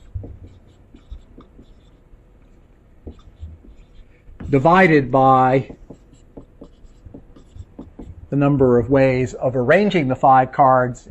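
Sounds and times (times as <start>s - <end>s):
handwriting strokes writing out a number: 0.0s - 8.6s
speech: 4.5s - 5.8s, 8.4s - 11.0s.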